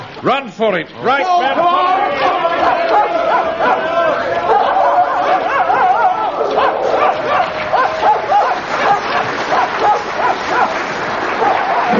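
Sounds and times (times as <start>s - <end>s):
speech: 0.2s - 3.7s
dogs barking, yipping and whimpering while swimming across a river: 2.6s - 3.8s, 4.4s - 11.9s.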